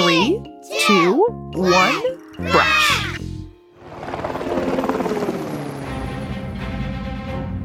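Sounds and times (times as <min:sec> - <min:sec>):
speech: 0:00.9 - 0:02.7
airplane engine powering up for takeoff: 0:03.8 - 0:07.6.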